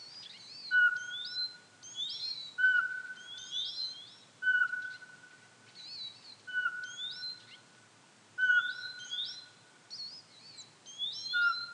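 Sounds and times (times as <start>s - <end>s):
small birds singing rapid twittering phrases: 0.0s - 7.7s, 8.4s - 11.7s
Eurasian pygmy owl Glaucidium passerinum whistling a plain even note: 0.7s - 1.4s, 2.6s - 3.5s, 4.4s - 5.2s, 6.5s - 7.2s, 8.4s - 9.4s, 11.0s - 11.7s.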